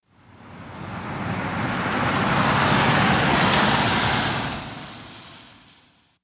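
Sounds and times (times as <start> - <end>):
individual cars passing on wet road: 0.1 - 6.2.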